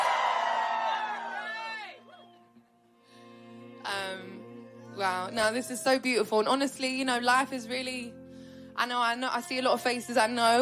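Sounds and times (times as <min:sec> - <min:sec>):
large live concert audience screaming and cheering: 0:00.0 - 0:02.3
speech: 0:05.0 - 0:08.2, 0:08.8 - 0:10.5.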